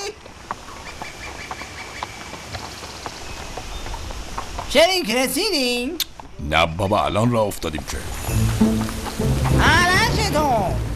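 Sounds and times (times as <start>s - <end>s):
ridden donkeys' hooves clip-clopping while walking: 0.0s - 10.7s
constant hiss: 0.0s - 10.9s
speech: 4.7s - 9.0s.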